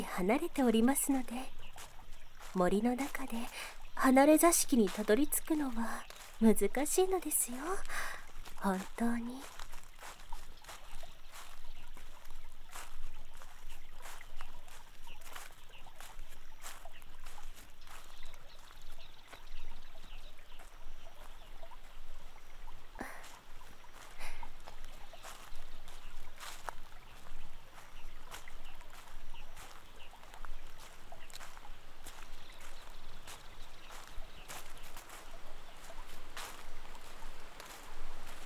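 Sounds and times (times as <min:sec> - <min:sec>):
speech: 0:00.2 - 0:01.6, 0:02.5 - 0:09.6
flowing water of a nearby waterfall: 0:20.9 - 0:38.4.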